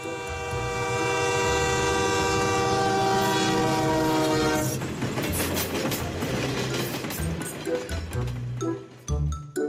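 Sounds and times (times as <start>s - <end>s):
loud train horn blast: 0.0s - 4.8s
passing rail cars rumbling and clattering: 0.1s - 9.5s.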